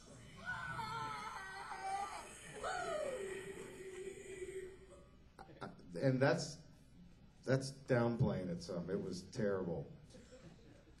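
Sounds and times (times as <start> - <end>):
person imitating a blood-curdling scream: 0.4 - 3.6
speech: 6.0 - 6.6, 7.4 - 10.2.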